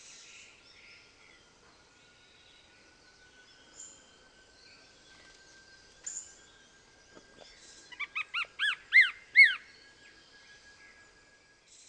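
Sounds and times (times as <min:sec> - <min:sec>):
Greyish Mourner Rhytipterna simplex simplex whistled song: 0:01.0 - 0:11.8.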